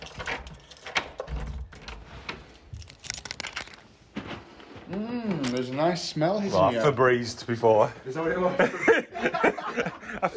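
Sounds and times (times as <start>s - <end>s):
keys jangling and turning in a front door lock: 0.0s - 3.9s, 5.4s - 5.7s
speech: 4.9s - 10.3s
laughter: 8.2s - 10.3s.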